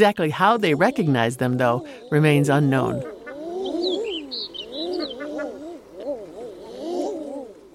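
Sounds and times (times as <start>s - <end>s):
speech: 0.0s - 3.2s
common eiders crooning coos: 0.4s - 7.7s
faint higher chirps: 3.4s - 6.9s.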